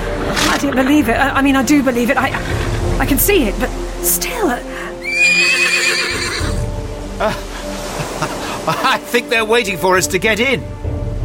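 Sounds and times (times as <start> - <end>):
speech: 0.6 - 4.8, 7.2 - 7.5, 8.2 - 10.8
horse snorting: 2.0 - 3.2, 5.0 - 6.7
horse whinnying loudly and shrilly: 5.0 - 6.7.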